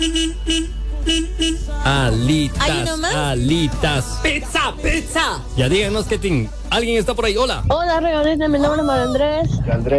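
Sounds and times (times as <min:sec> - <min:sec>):
car horn honks: 0:00.0 - 0:03.2
speech: 0:01.9 - 0:09.9.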